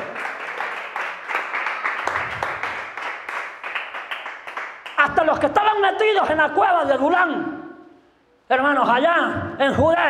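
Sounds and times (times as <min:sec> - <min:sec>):
audience applauding in praise of God: 0:00.0 - 0:05.0
speech: 0:05.1 - 0:07.5, 0:08.5 - 0:10.0.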